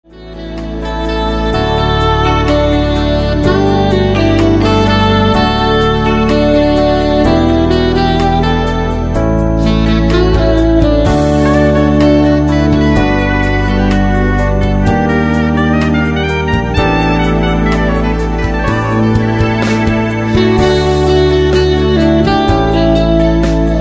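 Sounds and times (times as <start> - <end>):
instrumental music: 0.0 - 23.7.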